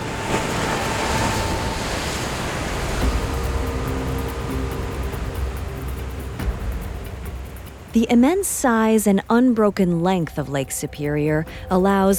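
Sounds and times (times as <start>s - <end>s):
large wave crashing over a ship: 0.0s - 5.9s
heavy surf roaring: 0.0s - 8.4s
gusting wind: 0.0s - 9.6s
low rumble of churning water: 0.0s - 12.1s
speech: 8.0s - 12.1s.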